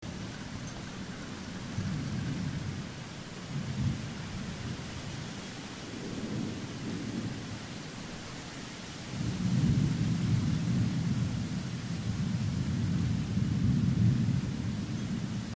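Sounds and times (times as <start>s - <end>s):
rainforest ambience: 0.0s - 15.5s.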